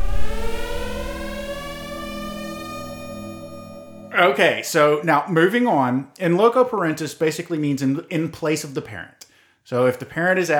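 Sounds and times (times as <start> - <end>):
loud steady siren sound effect wailing: 0.0 - 4.6
speech: 4.2 - 10.5.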